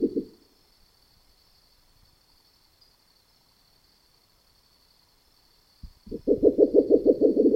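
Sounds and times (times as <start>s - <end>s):
spectacled owl giving low pulsed hoots: 0.0s - 0.4s, 6.1s - 7.5s
faint continuous high-pitched whine: 0.0s - 7.5s.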